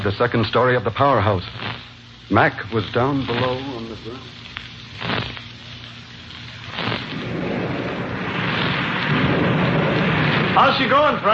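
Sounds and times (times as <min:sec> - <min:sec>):
speech: 0:00.0 - 0:04.4, 0:10.6 - 0:11.3
heavy rain pouring outside a powerhouse: 0:06.5 - 0:11.3
thunder rumbling and cracking: 0:06.9 - 0:11.3.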